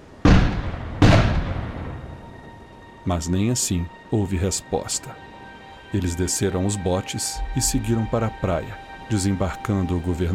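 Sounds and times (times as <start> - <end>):
cannon blasts fired from ships anchored off an island: 0.2 - 2.2
speech: 3.1 - 10.3.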